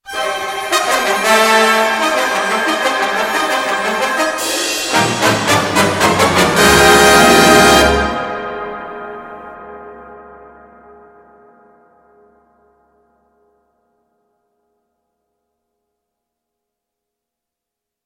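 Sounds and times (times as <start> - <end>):
dramatic music cues: 0.0 - 13.0.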